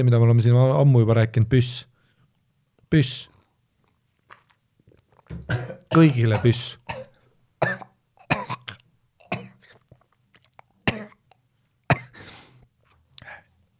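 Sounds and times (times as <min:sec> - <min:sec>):
speech: 0:00.0 - 0:01.9, 0:02.9 - 0:03.3, 0:05.4 - 0:07.8
person coughing after water went down the wrong way: 0:05.4 - 0:09.7, 0:10.9 - 0:11.2, 0:11.9 - 0:12.5
breathy gasps: 0:12.1 - 0:12.6.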